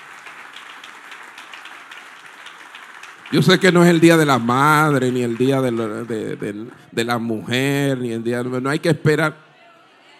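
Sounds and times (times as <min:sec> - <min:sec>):
audience applauding: 0:00.0 - 0:08.0
speech: 0:03.3 - 0:09.4.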